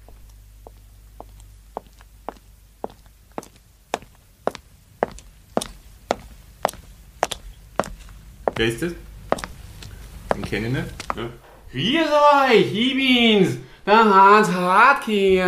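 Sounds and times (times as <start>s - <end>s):
footsteps walking in through an opened door: 0.0s - 11.8s
speech: 8.6s - 9.1s, 10.5s - 15.4s.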